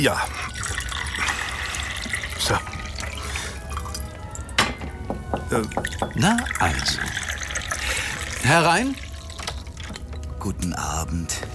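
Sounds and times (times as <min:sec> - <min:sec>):
speech: 0:00.0 - 0:00.4, 0:02.4 - 0:02.7, 0:05.5 - 0:07.2, 0:08.4 - 0:09.0, 0:10.4 - 0:11.5
tea pouring into a small teacup: 0:00.0 - 0:04.6, 0:05.4 - 0:10.0
china clinking: 0:03.0 - 0:10.4.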